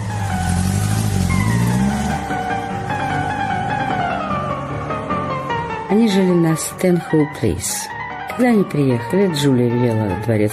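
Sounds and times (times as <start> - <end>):
car engine pulling off and driving away: 0.0 - 5.9
tire and road noise: 0.0 - 7.8
speech: 5.9 - 10.5.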